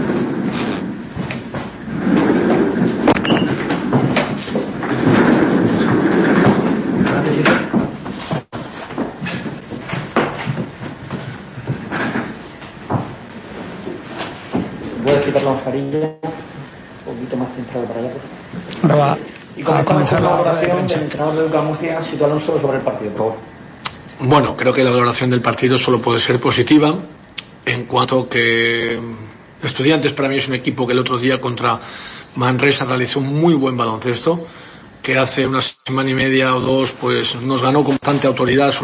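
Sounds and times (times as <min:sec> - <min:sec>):
chair being dragged, shifted and swapped: 0:00.0 - 0:15.6
speech: 0:15.7 - 0:16.3, 0:17.7 - 0:23.5, 0:24.2 - 0:38.8.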